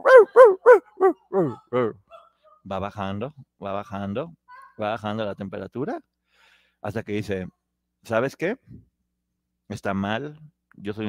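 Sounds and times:
dog barking: 0.0s - 1.6s
faint dog yelp: 0.0s - 2.7s
speech: 2.7s - 6.1s, 6.8s - 8.7s, 9.7s - 11.0s.

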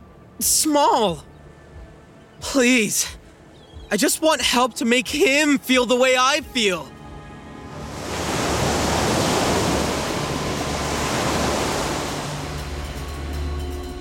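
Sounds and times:
speech: 0.4s - 1.3s, 2.4s - 3.2s, 3.9s - 7.0s
ocean wave washing onto shore: 7.7s - 13.0s.

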